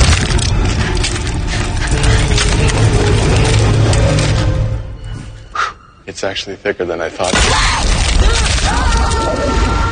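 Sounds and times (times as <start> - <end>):
thin sheets of muscovite rock cracking and shattering: 0.0 - 4.6, 7.2 - 9.8
speech: 6.2 - 7.9.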